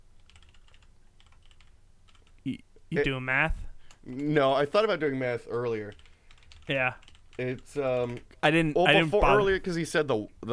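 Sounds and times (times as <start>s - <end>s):
low hum: 0.0s - 10.5s
typing on a computer keyboard: 0.2s - 2.4s, 5.5s - 8.3s
speech: 2.4s - 6.0s, 6.7s - 10.5s.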